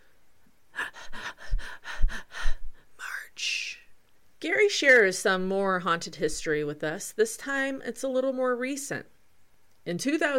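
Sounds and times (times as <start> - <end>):
heavy rapid panting breaths: 0.8 - 2.8
speech: 4.5 - 9.1, 9.8 - 10.3.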